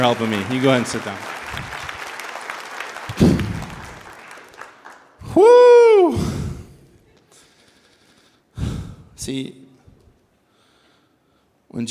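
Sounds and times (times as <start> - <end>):
speech: 0.0 - 1.8, 5.4 - 6.2, 9.2 - 9.6, 11.7 - 11.9
audience applauding: 0.0 - 5.6.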